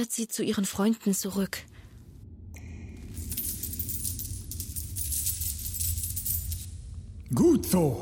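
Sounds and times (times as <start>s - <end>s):
speech: 0.0s - 1.8s, 7.3s - 8.0s
low rumble: 1.0s - 8.0s
coins dropped onto the ground clinking and jingling: 3.0s - 6.8s.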